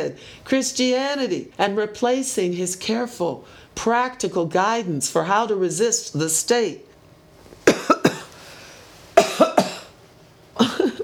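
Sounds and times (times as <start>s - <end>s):
speech: 0.0s - 6.9s
loud harsh coughing fit: 7.6s - 8.4s, 9.2s - 10.0s, 10.6s - 11.0s.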